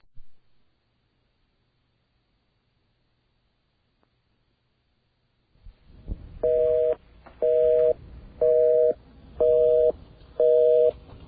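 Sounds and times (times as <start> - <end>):
faint low hiss: 0.0 - 11.2
telephone busy signal on an AT&T call: 6.4 - 10.9.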